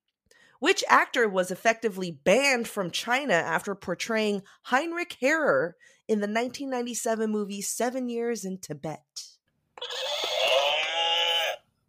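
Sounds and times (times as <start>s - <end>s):
speech: 0.6s - 10.0s
horse whinnying: 9.8s - 11.6s.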